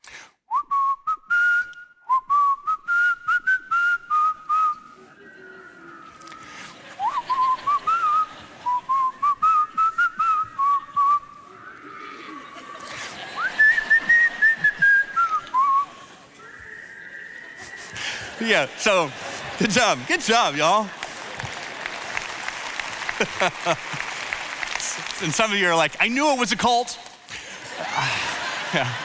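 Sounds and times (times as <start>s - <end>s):
person whistling a simple bouncy children's church song: 0.5s - 12.2s, 13.4s - 18.4s
laughter: 4.9s - 26.7s, 27.3s - 29.0s
speech: 18.5s - 21.0s, 23.2s - 24.0s, 25.2s - 27.0s, 28.7s - 29.0s.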